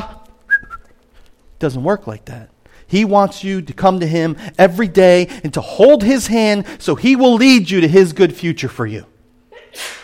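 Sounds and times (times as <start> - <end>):
speech: 1.6 - 9.1
person sneezing: 9.6 - 10.0.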